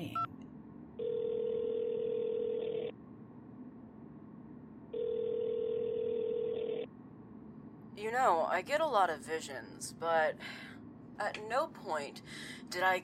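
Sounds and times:
low hum: 0:00.0 - 0:13.0
telephone ringback tone: 0:01.0 - 0:02.9, 0:04.9 - 0:06.9
speech: 0:08.0 - 0:13.0.

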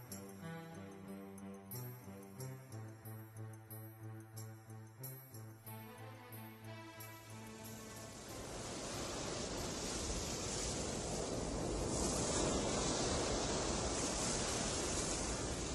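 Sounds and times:
wind at the sea shore: 0:00.0 - 0:15.7
sea waves breaking on the shore: 0:07.8 - 0:15.7.

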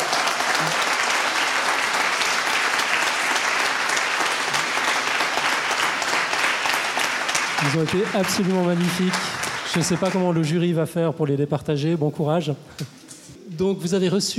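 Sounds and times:
large audience applauding loudly: 0:00.0 - 0:10.6
speech: 0:07.7 - 0:13.0, 0:13.6 - 0:14.3.

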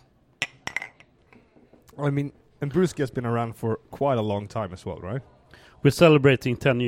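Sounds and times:
glasses of oaked pilsner beer clinking in a toast: 0:00.4 - 0:01.2
speech: 0:02.0 - 0:06.8.

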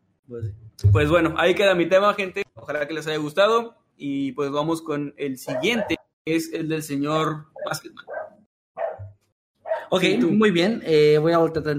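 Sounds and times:
speech: 0:00.3 - 0:08.1, 0:09.9 - 0:11.7
dog barking: 0:05.5 - 0:06.0, 0:07.6 - 0:09.9.

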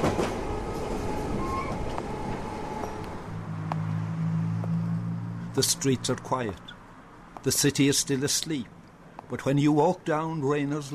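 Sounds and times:
London Underground subway train rumbling along the tracks: 0:00.0 - 0:04.6
speech: 0:05.6 - 0:06.8, 0:07.4 - 0:10.9.

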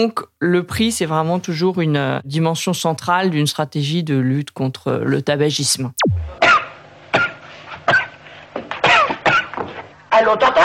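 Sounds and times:
speech: 0:00.0 - 0:06.5, 0:10.2 - 0:10.6
person coughing harshly and raspily: 0:08.8 - 0:09.6.

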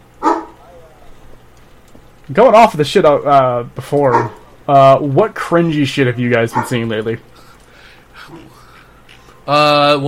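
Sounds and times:
dog barking: 0:00.2 - 0:00.6, 0:04.1 - 0:04.4, 0:06.5 - 0:06.8
speech: 0:02.3 - 0:07.3, 0:09.5 - 0:10.0.

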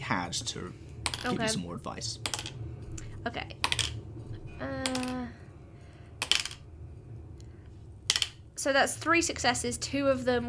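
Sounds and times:
low hum: 0:00.0 - 0:10.4
speech: 0:00.1 - 0:02.6, 0:03.2 - 0:03.6, 0:04.6 - 0:04.9, 0:08.6 - 0:10.4
dice rolled onto a hard surface: 0:01.1 - 0:01.3, 0:02.2 - 0:02.6, 0:03.6 - 0:04.0, 0:04.8 - 0:05.2, 0:06.2 - 0:06.6, 0:08.1 - 0:08.4.

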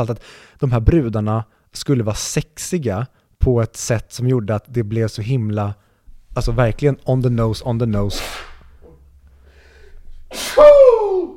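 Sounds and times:
speech: 0:00.0 - 0:05.8, 0:06.4 - 0:08.4, 0:10.3 - 0:11.3
person sneezing loudly: 0:08.1 - 0:08.7, 0:10.3 - 0:11.3.

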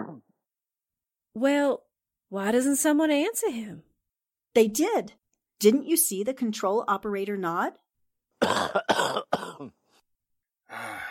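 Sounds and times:
speech: 0:01.4 - 0:03.9, 0:04.5 - 0:07.8, 0:08.4 - 0:09.8
person clearing throat: 0:08.4 - 0:09.8
person coughing: 0:08.4 - 0:09.8.

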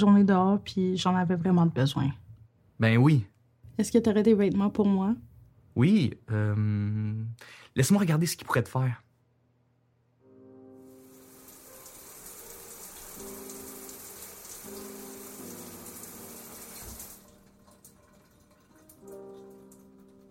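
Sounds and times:
speech: 0:00.0 - 0:02.2, 0:02.8 - 0:09.0
shower water running: 0:10.8 - 0:20.2.

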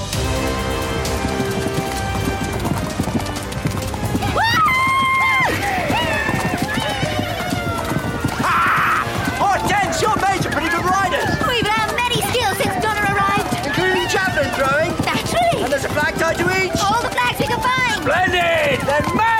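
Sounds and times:
horse hooves clip-clopping: 0:00.1 - 0:19.3
horse whinnying: 0:04.1 - 0:15.3.

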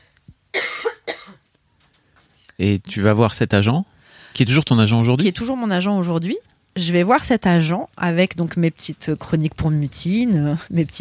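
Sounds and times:
person coughing harshly: 0:00.6 - 0:01.4
speech: 0:02.6 - 0:10.9.

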